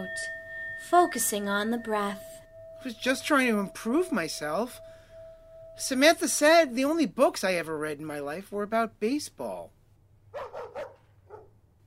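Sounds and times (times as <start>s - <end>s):
speech: 0.0s - 4.9s, 5.8s - 9.8s
low steady hum: 0.0s - 8.3s
dog barking: 10.3s - 11.6s.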